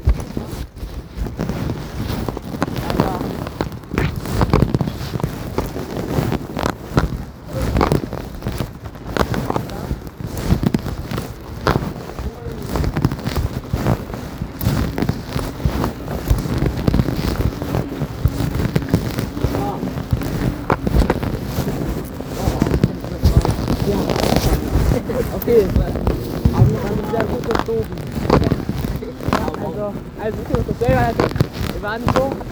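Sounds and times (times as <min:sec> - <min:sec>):
heavy wind rumbling against the microphone: 0:00.0 - 0:32.5
firecrackers cracking and popping outdoors: 0:02.4 - 0:32.5
voices: 0:02.8 - 0:03.6, 0:07.4 - 0:08.3, 0:09.2 - 0:10.1, 0:11.5 - 0:14.0, 0:17.1 - 0:32.5.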